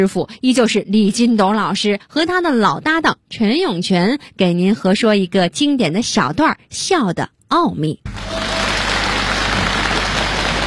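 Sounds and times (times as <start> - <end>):
speech: 0.0 - 8.4
audience applause at a live comedic crosstalk performance: 8.1 - 10.6.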